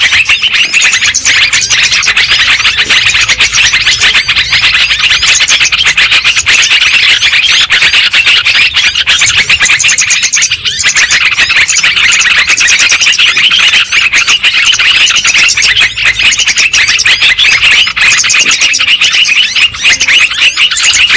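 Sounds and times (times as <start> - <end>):
lovebird chattering: 0.0 - 21.1.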